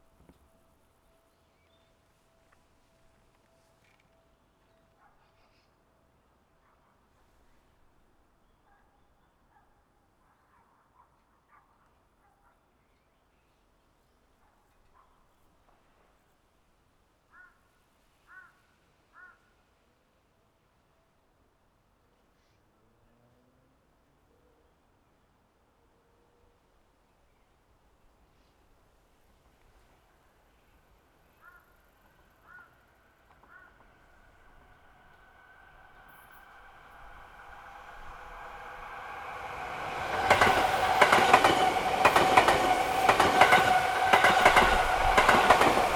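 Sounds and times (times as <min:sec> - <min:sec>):
up-line train passing: 0:29.8 - 0:45.9.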